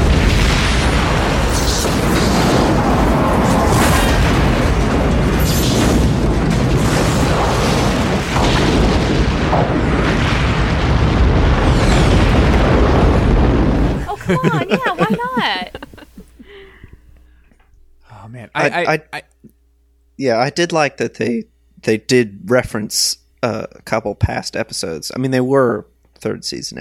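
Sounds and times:
sci-fi spaceship explosion with crackling bursts: 0.0s - 14.0s
laughter: 14.0s - 16.8s, 18.6s - 19.2s
speech: 14.3s - 15.7s, 18.6s - 19.3s, 20.2s - 26.7s.

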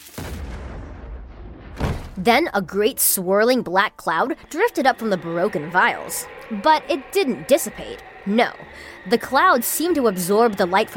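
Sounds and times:
massive explosion with rumbling roar: 0.1s - 2.2s
speech: 2.2s - 10.9s.

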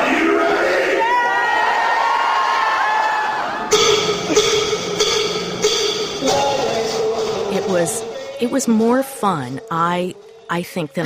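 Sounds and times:
packed crowd of librarians screaming and cheering: 0.0s - 8.5s
speech: 7.9s - 11.0s.

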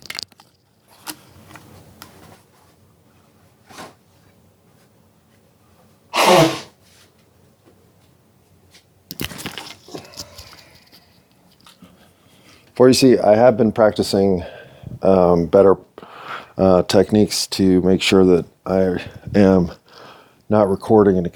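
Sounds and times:
rustling and handling noises: 0.0s - 6.0s, 6.8s - 12.8s
person blowing nose: 6.1s - 6.8s
speech: 6.3s - 6.6s, 12.8s - 15.9s, 16.6s - 19.8s, 20.5s - 21.3s.

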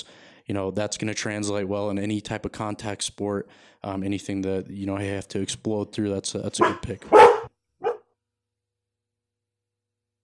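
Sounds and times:
speech: 0.0s - 7.4s
dog barking: 6.6s - 8.0s.

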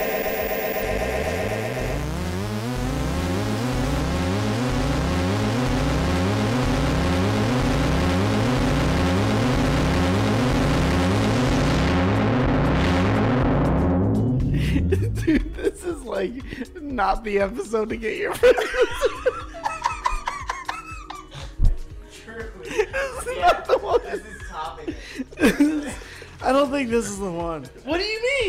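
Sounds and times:
synthetic rocket sound effect evoking space with pulsing sweep: 0.0s - 13.6s
laughter: 14.6s - 15.9s, 18.3s - 21.5s, 22.6s - 26.2s
speech: 16.2s - 19.1s, 26.8s - 28.4s.

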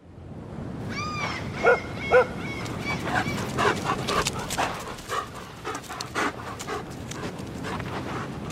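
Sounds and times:
steady outdoor wash: 0.0s - 8.5s
dog panting while walking on beach: 3.0s - 8.5s.

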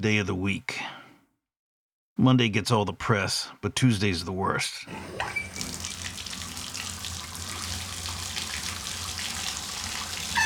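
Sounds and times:
speech: 0.0s - 0.8s, 2.2s - 5.5s
shower water running: 4.9s - 10.4s.

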